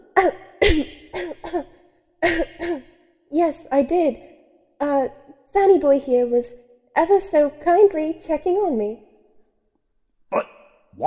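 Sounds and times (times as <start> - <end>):
speech: 0.2 - 2.4, 3.5 - 9.1, 10.3 - 11.0
person coughing: 0.6 - 2.9.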